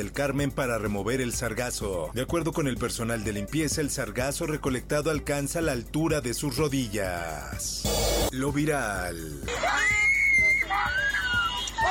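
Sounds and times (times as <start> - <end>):
speech: 0.0 - 10.0
young girl crying and screaming in traffic: 9.5 - 11.8.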